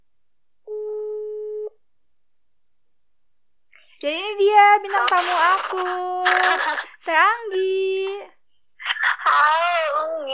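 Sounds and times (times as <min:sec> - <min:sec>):
telephone call tone while dialing: 0:00.7 - 0:01.8
speech: 0:04.0 - 0:08.3, 0:09.3 - 0:10.3.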